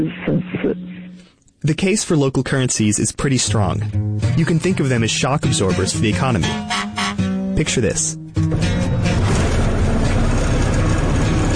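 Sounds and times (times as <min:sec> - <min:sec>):
speech: 0:00.0 - 0:06.9, 0:07.6 - 0:08.8
old car engine running: 0:08.4 - 0:11.5.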